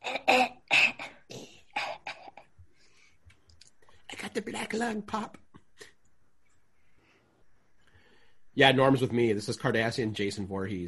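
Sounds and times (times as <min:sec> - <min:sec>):
person coughing harshly on the street: 0:00.0 - 0:02.5
speech: 0:04.4 - 0:05.4, 0:08.6 - 0:10.8.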